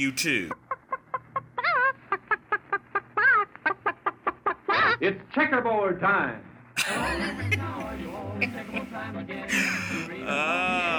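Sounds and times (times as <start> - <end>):
speech: 0.0 - 0.6, 5.0 - 10.9
chicken wavering squawks: 0.9 - 5.0
laughter: 6.8 - 10.9.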